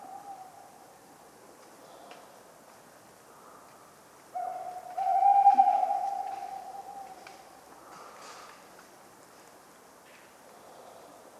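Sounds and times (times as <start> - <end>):
tawny owl hooting on a cold autumn night: 0.0 - 0.8, 4.3 - 7.4.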